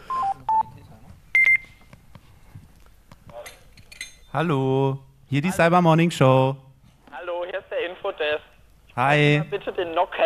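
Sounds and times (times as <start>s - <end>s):
electronic telephone beeps at two pitches: 0.0s - 0.7s
speech: 4.4s - 6.6s, 9.0s - 10.2s.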